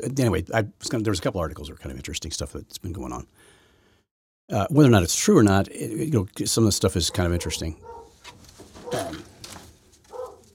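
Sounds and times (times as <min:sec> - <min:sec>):
speech: 0:00.0 - 0:03.6, 0:04.5 - 0:09.2
dog barking upstairs: 0:07.0 - 0:08.2, 0:08.8 - 0:09.3, 0:10.1 - 0:10.5.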